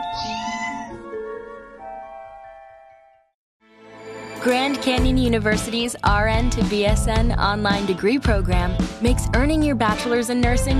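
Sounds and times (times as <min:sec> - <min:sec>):
cat meowing: 0:00.0 - 0:01.0
speech: 0:04.4 - 0:10.7.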